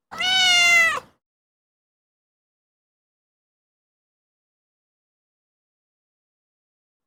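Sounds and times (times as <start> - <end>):
cat meowing: 0.0 - 1.1.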